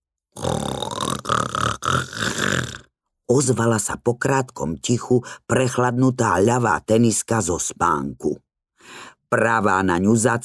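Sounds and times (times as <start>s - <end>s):
person imitating loud rasping snoring: 0.4s - 2.9s
speech: 3.3s - 10.4s.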